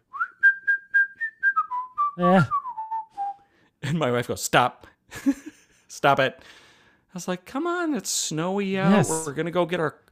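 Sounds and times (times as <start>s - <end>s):
person whistling a short tune: 0.0s - 3.5s
speech: 2.2s - 2.6s, 3.9s - 10.0s.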